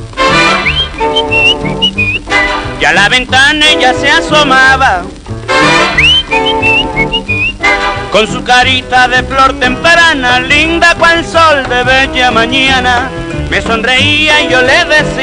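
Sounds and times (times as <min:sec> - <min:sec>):
full band accompaniment: 0:00.0 - 0:15.2
person whistling a lively melody: 0:00.5 - 0:02.2, 0:05.8 - 0:07.6
speech: 0:02.8 - 0:06.2, 0:08.1 - 0:15.2.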